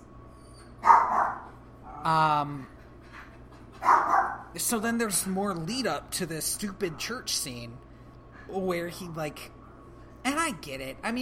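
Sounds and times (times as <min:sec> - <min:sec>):
low steady hum: 0:00.0 - 0:11.2
dog yelping: 0:00.4 - 0:02.1, 0:03.8 - 0:04.5
dogs barking: 0:00.7 - 0:02.1, 0:03.7 - 0:04.6
speech: 0:02.0 - 0:02.8, 0:04.6 - 0:07.9, 0:08.5 - 0:09.6, 0:10.2 - 0:11.2.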